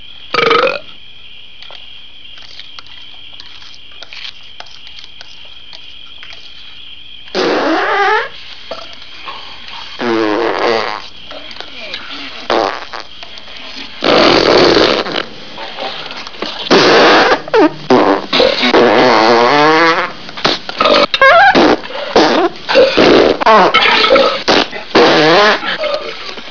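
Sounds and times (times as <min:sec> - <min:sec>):
bean fart: 0:00.3 - 0:00.9, 0:07.3 - 0:08.9, 0:10.0 - 0:11.1, 0:12.5 - 0:13.1, 0:14.0 - 0:15.3, 0:16.6 - 0:26.2.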